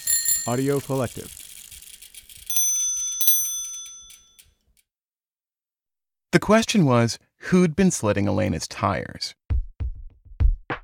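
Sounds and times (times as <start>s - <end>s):
small bicycle bell ringing: 0.0s - 4.6s
speech: 0.4s - 1.4s, 6.3s - 9.4s.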